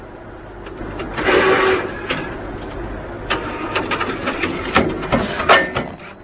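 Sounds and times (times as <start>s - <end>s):
ATM printing a receipt and dispensing cash: 0.0s - 6.2s.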